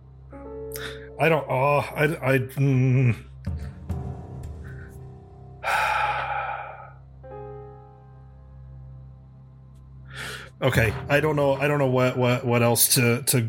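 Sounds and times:
speech: 1.2 - 3.3, 10.6 - 13.4
man breathing heavily and nervously: 4.5 - 7.1, 10.0 - 10.6
long loud breathy sigh: 5.6 - 7.0.

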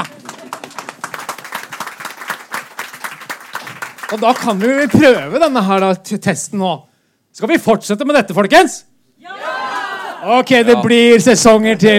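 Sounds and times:
audience applause: 0.0 - 5.6
speech: 4.1 - 8.9, 10.2 - 11.9.

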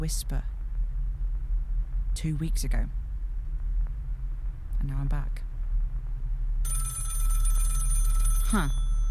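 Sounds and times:
speech: 0.0 - 0.5, 2.2 - 3.0, 4.8 - 5.5, 8.5 - 8.8
steady low hum: 0.0 - 9.0
telephone bell ringing: 6.7 - 9.0.

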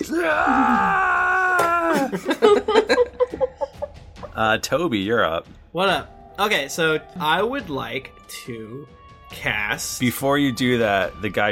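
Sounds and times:
person imitating an anguished scream: 0.0 - 2.2
speech: 0.1 - 0.8, 4.4 - 11.4
laughter: 1.7 - 4.4.

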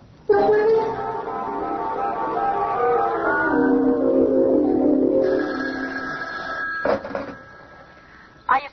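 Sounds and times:
music: 0.4 - 8.5
telephone ringing with a bright electronic tone: 4.8 - 8.4.

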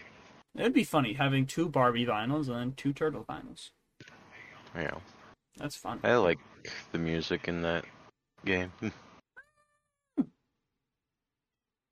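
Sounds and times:
speech: 0.6 - 3.8, 4.7 - 9.1
cat meowing: 9.4 - 10.0.

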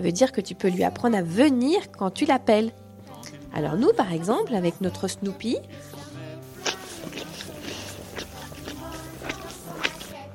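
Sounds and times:
speech: 0.0 - 2.8, 3.5 - 6.0
dog licking its paw: 6.5 - 10.3.

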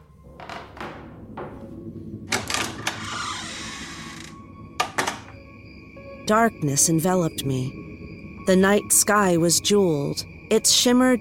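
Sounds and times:
screen door rattling open: 2.3 - 5.3
speech: 6.3 - 7.9, 8.5 - 11.1.

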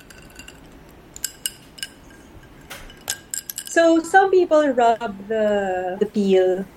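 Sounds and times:
ice cubes clinking against a glass while mixing a Negroni cocktail: 0.0 - 3.9
speech: 3.8 - 6.7.

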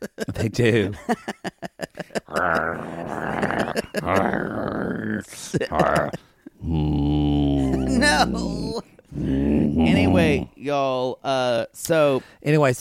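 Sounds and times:
laughter: 0.0 - 8.7
speech: 0.4 - 7.3, 8.0 - 12.7
excited dog grunting and groaning on a beach: 2.3 - 10.6.

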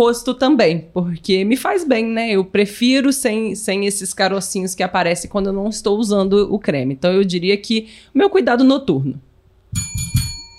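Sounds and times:
speech: 0.0 - 10.2
small metallic bell ringing: 9.7 - 10.5.

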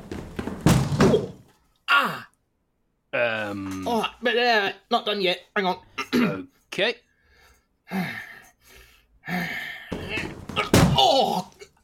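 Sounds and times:
stuck door cracking as it is forced: 0.5 - 1.5, 9.9 - 11.3
speech: 4.3 - 7.1, 7.9 - 8.2
strained breaths: 6.6 - 10.1.

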